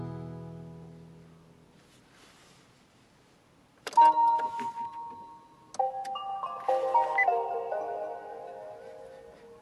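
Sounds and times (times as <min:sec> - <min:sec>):
car electronic greeting chime struck tone: 0:04.0 - 0:09.6.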